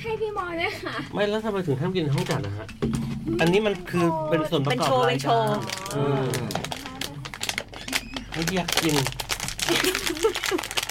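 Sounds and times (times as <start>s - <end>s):
speech: 0.1s - 6.7s, 8.4s - 10.7s
plastic snack bag being torn open, crinkling: 4.7s - 10.8s.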